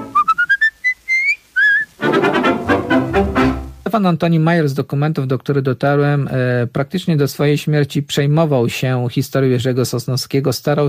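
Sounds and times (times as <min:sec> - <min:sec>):
fuller musical passage: 0:00.0 - 0:01.0, 0:01.7 - 0:03.9
person whistling a tune: 0:00.0 - 0:01.9
speech: 0:03.9 - 0:10.8.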